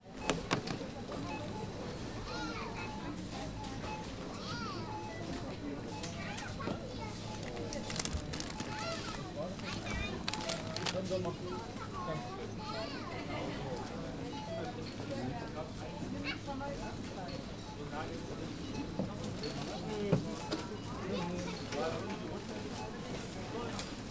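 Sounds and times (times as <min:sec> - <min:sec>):
supermarket ambience: 0:00.0 - 0:24.0.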